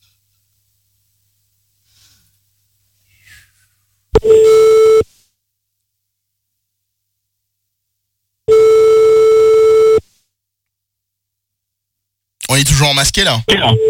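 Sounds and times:
telephone line tone after redialing a number: 4.2s - 5.0s, 8.5s - 10.0s, 13.5s - 13.8s
speech: 12.6s - 13.8s.

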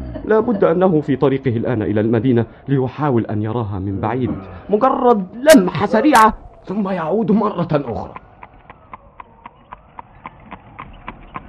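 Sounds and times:
speech: 0.3s - 8.2s
hooves of a horse-drawn mail coach trotting past: 7.6s - 11.4s.

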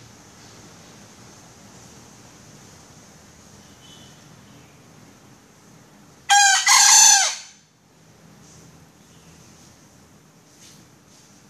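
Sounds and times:
female junglefowl giving a raspy crow-like call: 6.3s - 7.6s.

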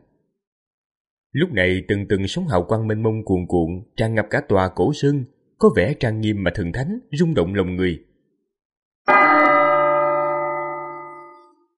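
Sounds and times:
speech: 1.3s - 8.1s
golden temple bell in a mountain temple struck once: 9.1s - 11.7s.

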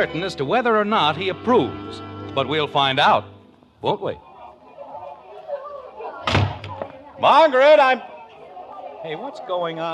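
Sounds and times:
speech: 0.0s - 4.3s, 7.2s - 8.1s, 9.0s - 9.9s
low voices: 0.0s - 9.9s
front door swinging shut with a solid thud: 6.2s - 6.9s.

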